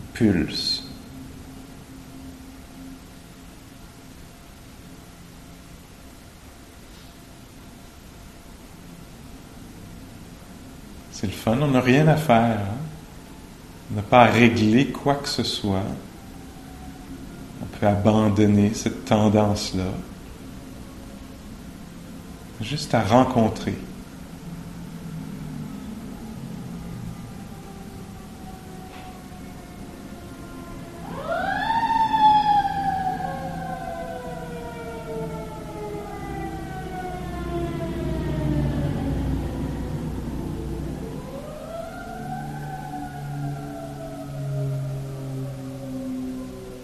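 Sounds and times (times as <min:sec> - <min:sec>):
low traffic rumble: 0:00.0 - 0:46.8
speech: 0:00.2 - 0:00.8, 0:11.2 - 0:12.8, 0:13.9 - 0:16.1, 0:17.8 - 0:20.1, 0:22.6 - 0:23.9
emergency vehicle siren wailing outside: 0:11.5 - 0:46.8.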